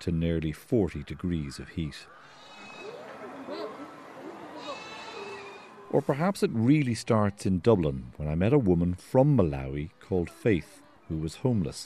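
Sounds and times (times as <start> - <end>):
speech: 0.0 - 2.4, 5.9 - 11.8
goats bleating: 2.3 - 6.0.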